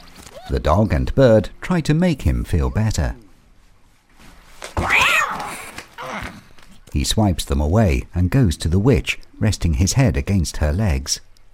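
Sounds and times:
speech: 0.5 - 3.2, 6.9 - 11.3
cat meowing sadly: 4.8 - 6.3.

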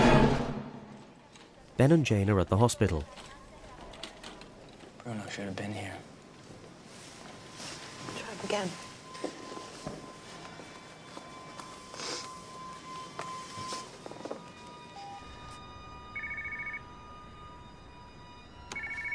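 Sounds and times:
speech: 1.8 - 3.4, 5.0 - 6.1, 8.4 - 9.4
telephone ringing in short electronic bursts: 8.5 - 19.1.

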